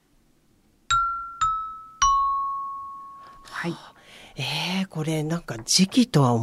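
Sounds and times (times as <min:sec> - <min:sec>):
bell-like struck notes from an automatic keyboard instrument: 0:00.9 - 0:03.8
speech: 0:03.4 - 0:06.4.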